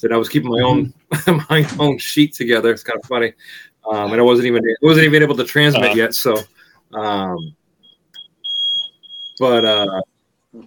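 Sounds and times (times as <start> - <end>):
speech: 0.0 - 7.6, 9.4 - 10.6
smoke alarm going off in a house: 7.2 - 10.0.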